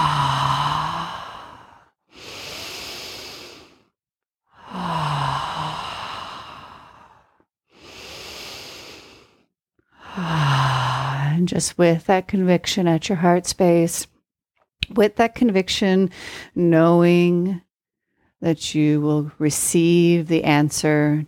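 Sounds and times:
deep breaths in through nose and out through mouth: 0:00.0 - 0:11.4
speech: 0:11.4 - 0:14.1, 0:15.0 - 0:17.6, 0:18.4 - 0:21.2.

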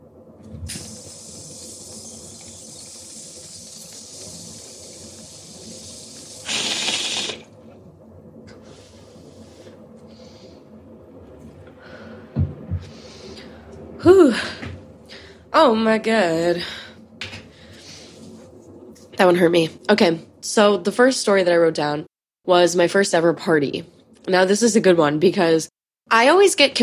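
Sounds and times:
lighter flicked to light a bowl, hissing: 0:00.7 - 0:07.5
speech: 0:15.6 - 0:16.8, 0:19.2 - 0:26.8.

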